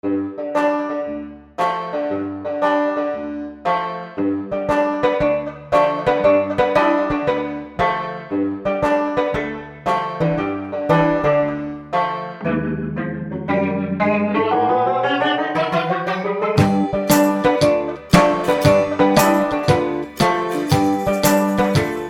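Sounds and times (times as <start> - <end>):
banjo: 0.3 - 22.0.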